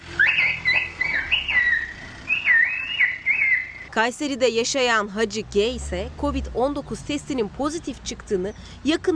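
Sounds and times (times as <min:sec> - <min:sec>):
gendarmerie whistling a warning in whistled bird language: 0:00.2 - 0:03.9
speech: 0:04.0 - 0:09.1.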